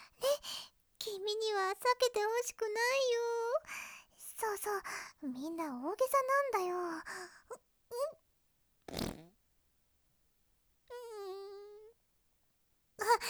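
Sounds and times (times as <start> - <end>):
speech: 1.7 - 8.2
fart sounds: 8.9 - 9.4.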